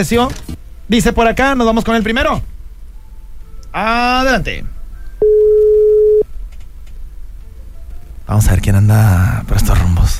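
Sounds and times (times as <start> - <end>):
speech: 0.0 - 2.5, 3.7 - 5.5, 8.3 - 10.1
faint hiss: 0.0 - 10.1
telephone ringback tone: 5.2 - 6.2.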